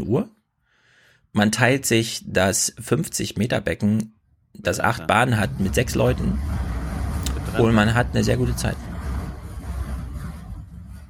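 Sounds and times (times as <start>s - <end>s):
speech: 0.0s - 0.4s, 1.3s - 6.7s, 7.6s - 8.9s
garbage truck engine rumbling outside in Berlin: 5.2s - 11.0s.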